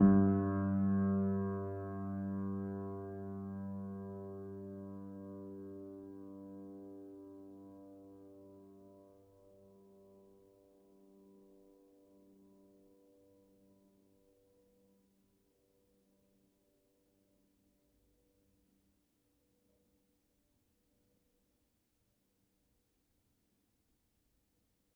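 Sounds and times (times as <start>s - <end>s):
upright piano sustained G1 note: 0.0s - 7.4s.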